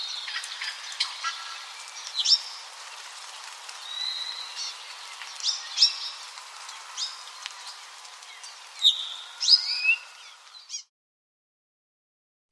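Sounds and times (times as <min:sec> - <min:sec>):
Apapane singing short whistles, chips and slurred notes on Maui, Hawaii: 0:00.0 - 0:02.6, 0:03.8 - 0:10.9.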